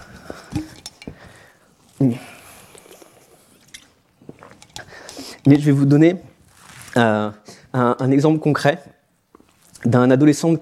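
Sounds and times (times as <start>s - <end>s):
person sipping water: 0.0s - 5.5s
speech: 2.0s - 2.3s, 5.5s - 6.3s, 7.0s - 7.4s, 8.0s - 9.0s, 9.8s - 10.6s.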